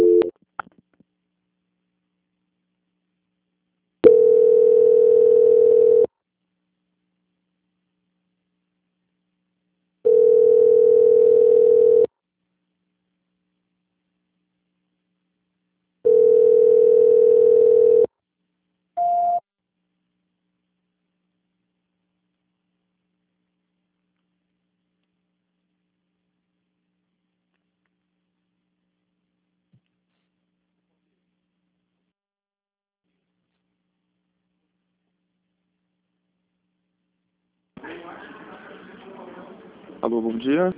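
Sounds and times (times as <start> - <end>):
low-pitched telephone ringback tone during a call transfer: 0.0 - 0.3, 4.0 - 6.1, 10.1 - 12.1, 16.1 - 18.1
speech: 40.1 - 40.7.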